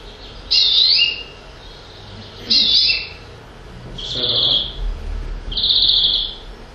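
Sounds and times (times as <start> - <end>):
greenfinch singing trilling phrases: 0.0 - 3.4, 4.0 - 4.9, 5.5 - 6.5
low rumble: 0.0 - 6.7.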